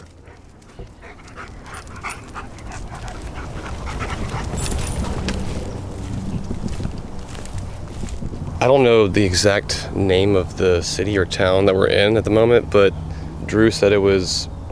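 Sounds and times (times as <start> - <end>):
search dogs whimpering faintly: 0.0 - 5.6
two search dogs panting heavily during a body search: 0.0 - 8.2
steady low rumble like an engine or boat: 0.0 - 14.7
speech: 8.6 - 14.5.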